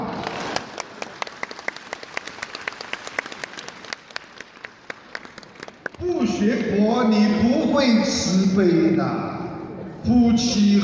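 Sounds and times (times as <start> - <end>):
audience applause: 0.0 - 6.4
speech: 6.4 - 9.2, 10.0 - 10.8.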